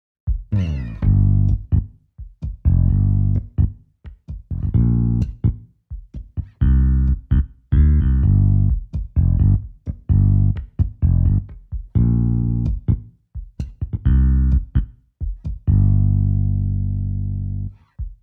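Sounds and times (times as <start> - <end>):
fingerstyle bass guitar: 0.5 - 1.9, 2.7 - 3.8, 4.5 - 5.6, 6.4 - 13.0, 13.7 - 14.9, 15.7 - 17.8.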